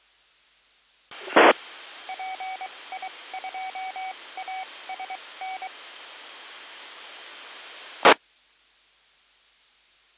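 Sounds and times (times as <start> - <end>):
hiss of radio static: 1.1 - 8.2.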